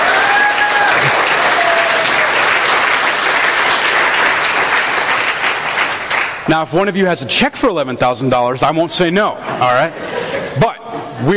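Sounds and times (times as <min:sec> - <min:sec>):
crowd applauding: 0:00.0 - 0:06.5
speech: 0:06.5 - 0:10.0, 0:10.6 - 0:11.3.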